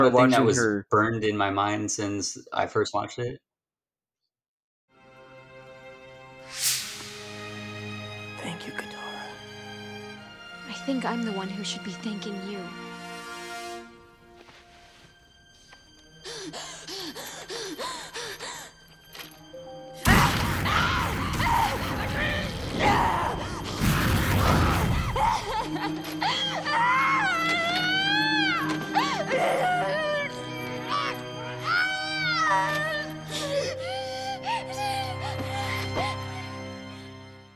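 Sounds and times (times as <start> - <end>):
speech: 0.0 - 3.5, 10.9 - 13.0, 16.4 - 16.8
woman screaming and wailing with heaving breaths: 20.1 - 23.6, 24.7 - 36.4.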